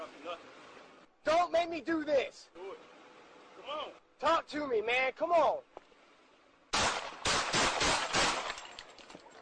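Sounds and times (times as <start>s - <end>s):
speech: 0.2s - 2.9s, 3.6s - 5.7s
gunshots fired by a police officer: 6.7s - 9.0s.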